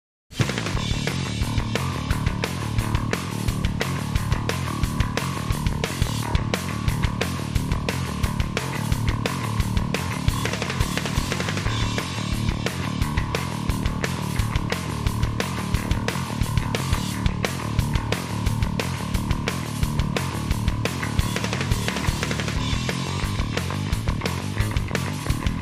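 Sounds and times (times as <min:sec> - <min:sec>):
bass: 0:00.3 - 0:25.5
drums: 0:00.3 - 0:25.5.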